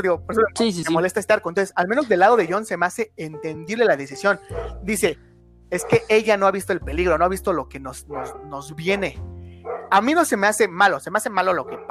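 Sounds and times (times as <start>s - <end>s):
speech: 0.0s - 11.8s
dog barking: 4.5s - 4.8s, 5.8s - 6.1s, 8.1s - 10.0s, 11.6s - 11.8s.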